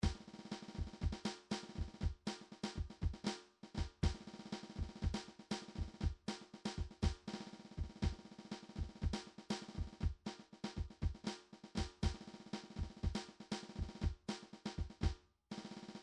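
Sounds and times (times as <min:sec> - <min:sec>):
funky MIDI drums: 0:00.0 - 0:16.0.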